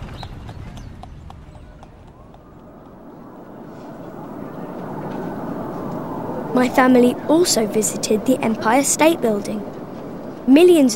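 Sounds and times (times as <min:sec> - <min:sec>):
horse hooves clip-clopping at a walking pace pulling a carriage: 0:00.0 - 0:06.0
city traffic: 0:00.0 - 0:10.9
rumble of carriage wheels: 0:00.0 - 0:10.9
speech: 0:06.6 - 0:09.8, 0:10.4 - 0:10.9.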